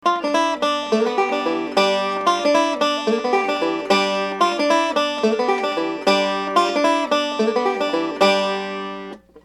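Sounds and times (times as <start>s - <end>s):
banjo lick: 0.0s - 9.4s.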